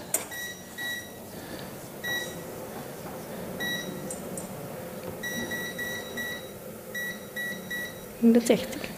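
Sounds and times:
low room hum: 0:00.0 - 0:08.9
modern electric oven control panel beeps being set to 160 degrees: 0:00.1 - 0:01.2, 0:02.0 - 0:02.5, 0:03.6 - 0:04.5, 0:05.2 - 0:08.2.

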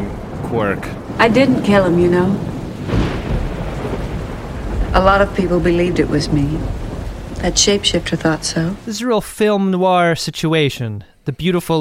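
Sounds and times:
deep rolling rumble of thunder: 0:00.0 - 0:09.0
steady hiss: 0:00.0 - 0:09.4
speech: 0:00.5 - 0:03.0, 0:05.0 - 0:06.8, 0:07.4 - 0:11.7.

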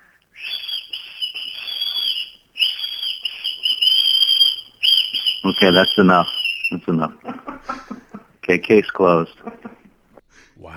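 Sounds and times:
person whistling a tune: 0:00.4 - 0:07.0
laughter: 0:05.4 - 0:10.0
speech: 0:05.5 - 0:07.3, 0:08.5 - 0:09.5.

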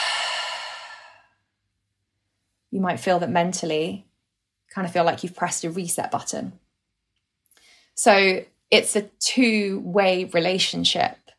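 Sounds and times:
breathing in through the nose: 0:00.0 - 0:01.3
long breath out through the mouth during a guided breathing exercise: 0:00.0 - 0:01.3
speech: 0:02.7 - 0:04.1, 0:04.7 - 0:06.6, 0:08.0 - 0:11.2.

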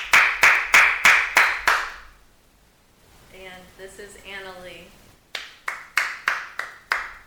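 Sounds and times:
sarcastic hard hand clapping: 0:00.0 - 0:02.1, 0:05.3 - 0:07.2.

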